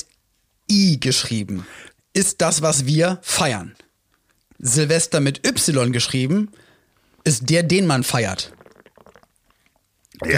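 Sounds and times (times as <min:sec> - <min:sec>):
speech: 0:01.0 - 0:03.8, 0:04.6 - 0:06.6, 0:07.2 - 0:08.6, 0:10.2 - 0:10.3
wet gulping as someone drinks: 0:08.4 - 0:10.2
mouth and throat noises: 0:08.4 - 0:10.3.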